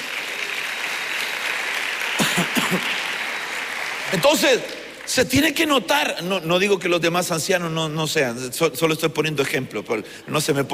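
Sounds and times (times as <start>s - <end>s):
church audience applauding: 0.0s - 5.7s
speech: 4.1s - 10.7s.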